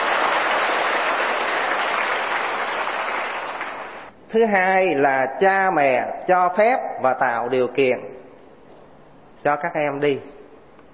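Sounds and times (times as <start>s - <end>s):
crowd of students applauding: 0.0s - 4.1s
speech: 4.3s - 8.2s, 9.4s - 10.3s.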